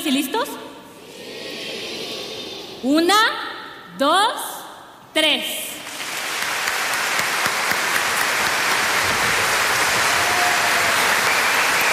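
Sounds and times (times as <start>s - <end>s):
speech: 0.0s - 0.7s, 2.8s - 3.4s, 4.0s - 4.5s, 5.2s - 5.6s
loud sustained applause from a large audience: 5.8s - 11.9s.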